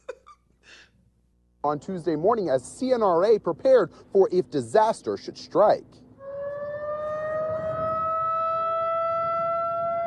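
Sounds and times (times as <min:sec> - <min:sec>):
speech: 0:01.6 - 0:06.0
warning siren wailing: 0:06.2 - 0:10.0.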